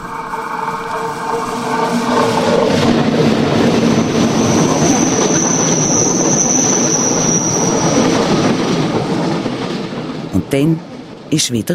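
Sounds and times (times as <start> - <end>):
high metallic squeal of train: 0.0 - 8.5
train wheels rumbling on rails: 0.0 - 11.7
speech: 10.5 - 11.7.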